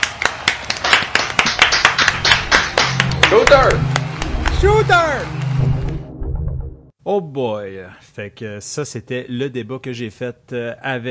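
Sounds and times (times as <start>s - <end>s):
small group of people clapping hands: 0.0s - 5.7s
speech: 3.3s - 4.0s, 4.6s - 5.4s, 7.1s - 11.0s.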